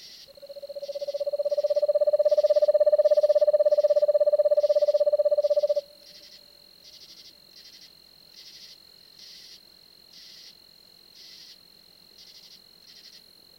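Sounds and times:
faint high-pitched hum: 0:00.0 - 0:13.5
eastern screech owl soft trill call: 0:00.4 - 0:06.2.

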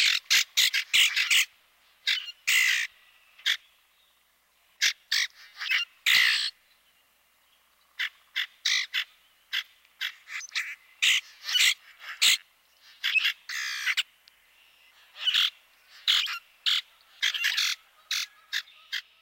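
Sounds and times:
common grackle giving harsh squeaky calls and creaky chatter: 0:00.0 - 0:03.8, 0:04.8 - 0:06.6, 0:07.6 - 0:19.2.

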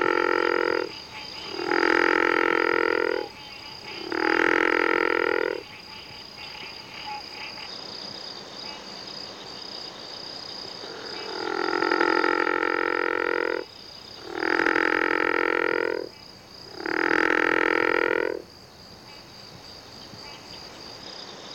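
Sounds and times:
river frog croaking: 0:00.0 - 0:07.8, 0:10.6 - 0:19.4.

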